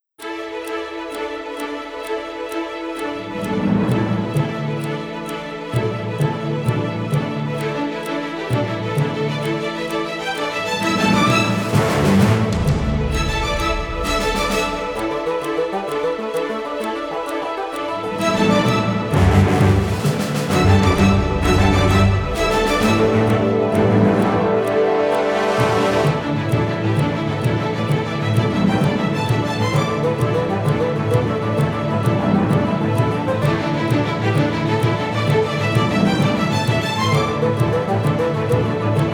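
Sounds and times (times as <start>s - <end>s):
heated debate news background music: 0.2s - 39.1s.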